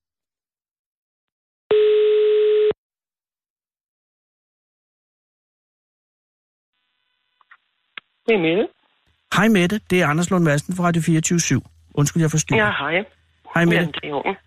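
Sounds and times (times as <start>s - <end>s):
telephone ringing tone on a phone line while placing a call: 1.7s - 2.8s
speech: 8.3s - 14.4s.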